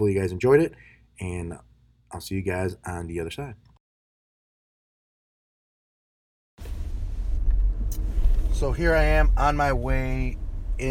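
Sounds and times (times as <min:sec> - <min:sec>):
speech: 0:00.0 - 0:03.7, 0:08.6 - 0:10.8
car engine rumble while driving: 0:06.6 - 0:10.8.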